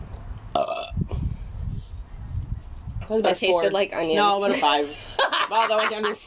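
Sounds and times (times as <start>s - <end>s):
person burping: 0.6s - 1.1s
speech: 3.1s - 6.2s
laughter: 4.4s - 6.2s.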